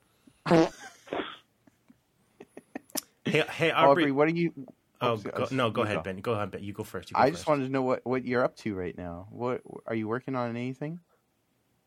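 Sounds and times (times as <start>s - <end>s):
loud buzzy fart sound: 0.4s - 1.4s
speech: 3.3s - 11.1s.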